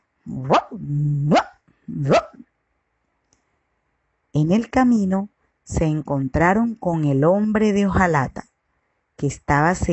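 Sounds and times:
speech: 0.2s - 2.3s, 4.4s - 8.5s, 9.2s - 9.9s
small dog yapping and growling: 0.3s - 2.4s.

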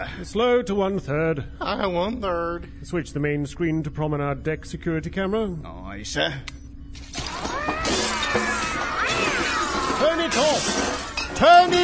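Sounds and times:
speech: 0.2s - 6.6s, 10.0s - 11.8s
smuggled cats yowling and meowing on a ship's promenade deck: 7.2s - 11.1s
clattering: 7.2s - 11.8s.

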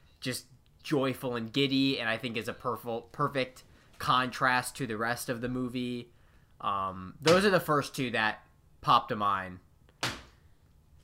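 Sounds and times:
speech: 0.2s - 9.6s
magazine swatted against a surface: 10.0s - 10.4s.

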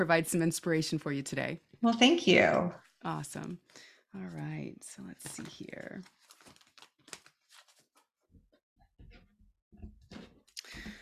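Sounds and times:
speech: 0.0s - 6.2s
deck of oracle cards being shuffled for a card reading: 5.1s - 8.1s.

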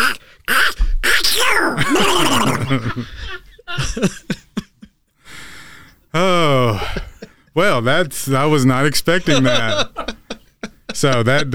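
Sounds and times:
exaggerated comic sneeze: 0.0s - 2.8s
speech: 1.6s - 4.3s, 7.6s - 10.0s, 11.0s - 11.5s
people laughing: 1.8s - 5.0s, 6.2s - 11.5s.

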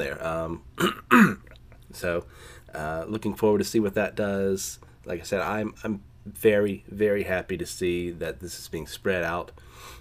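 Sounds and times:
speech: 0.0s - 10.0s
person coughing: 0.8s - 1.6s
throat clearing: 0.8s - 1.6s.

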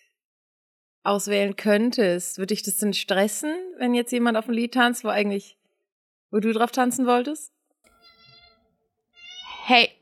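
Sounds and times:
speech: 1.0s - 5.6s, 6.3s - 7.6s, 9.7s - 9.9s
cat meowing loudly and insistently: 7.9s - 9.7s.

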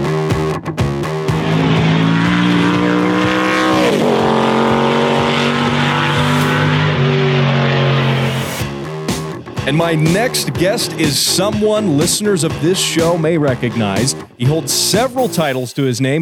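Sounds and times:
car engine revving: 1.0s - 12.0s
speech: 9.7s - 16.2s.

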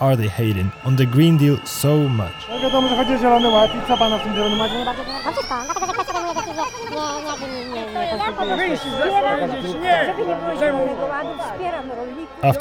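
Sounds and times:
dense chatter of a large outdoor protest crowd of farmers, miners and steelworkers: 0.0s - 12.5s
speech: 0.0s - 12.5s
laughter: 2.6s - 11.6s.

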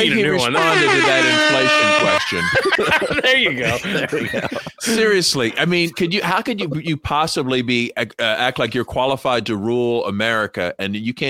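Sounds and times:
comedic alert horn blast sound effect: 0.0s - 2.6s
laughter: 0.0s - 6.9s
speech: 0.0s - 11.2s.

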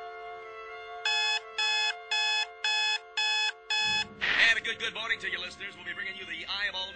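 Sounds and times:
alarm clock electronic beeps: 1.1s - 4.1s
speech: 4.7s - 6.9s.

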